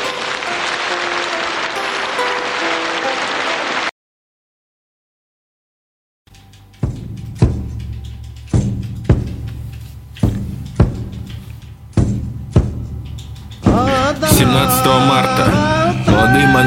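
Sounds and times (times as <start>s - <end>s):
crowd applause: 0.0s - 3.9s, 14.0s - 16.6s
low thumping sounds: 6.8s - 16.6s.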